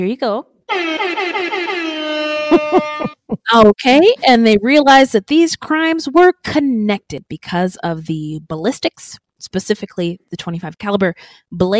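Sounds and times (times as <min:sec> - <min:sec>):
speech: 0:00.0 - 0:11.7
brassy hip hop air horn blasts: 0:00.7 - 0:03.2
laughter: 0:02.4 - 0:03.4.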